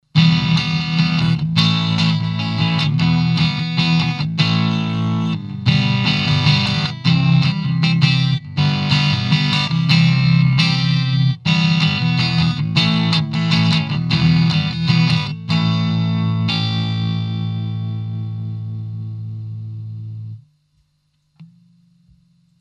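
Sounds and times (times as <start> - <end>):
electric guitar with boost effect on: 0.1 - 20.5.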